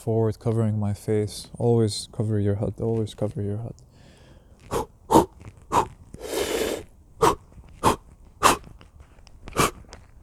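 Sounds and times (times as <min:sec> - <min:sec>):
speech: 0:00.0 - 0:03.9
short sharp exhalations of forceful rhythmic breathing: 0:03.9 - 0:08.7, 0:09.5 - 0:09.9
long hissing breath: 0:05.7 - 0:08.6.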